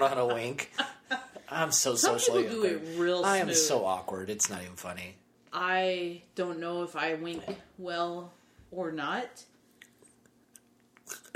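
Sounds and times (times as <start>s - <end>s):
speech: 0.0s - 0.8s, 1.5s - 9.5s
moist mouth smack: 9.8s - 11.3s
mouth opening, lips parting: 9.8s - 11.3s.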